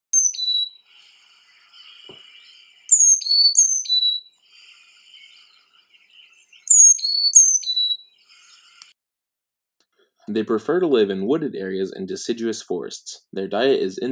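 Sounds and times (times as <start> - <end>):
Carolina chickadee calling with high thin whistled notes: 0.0 - 8.9
faint twittering: 0.1 - 9.0
speech: 10.3 - 14.1.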